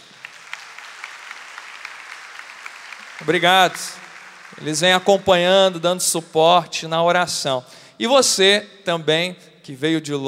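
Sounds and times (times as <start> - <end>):
audience applause: 0.0 - 5.4
speech: 3.2 - 10.2.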